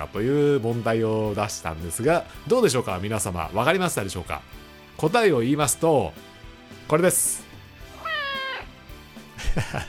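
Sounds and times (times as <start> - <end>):
speech: 0.0 - 6.3, 6.9 - 7.4, 9.6 - 9.8
pet cat meowing: 7.8 - 8.8.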